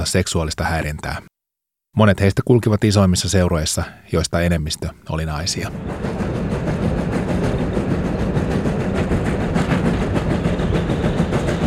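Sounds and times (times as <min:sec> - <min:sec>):
speech: 0:00.0 - 0:01.3, 0:02.0 - 0:06.4
moving train rumbling: 0:04.8 - 0:11.6
train wheels clacking on rails: 0:05.4 - 0:11.6.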